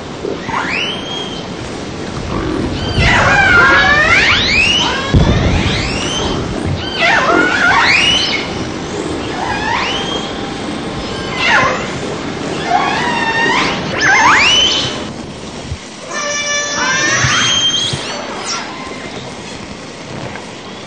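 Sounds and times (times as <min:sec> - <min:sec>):
orca pulsed calls with harmonic bands: 0:00.0 - 0:19.6
constant hissing background: 0:00.0 - 0:20.8.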